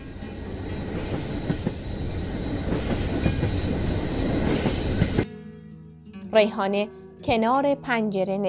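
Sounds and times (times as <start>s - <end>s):
train starting to move along the rails at a busy station: 0.0s - 5.3s
speech: 6.4s - 8.4s.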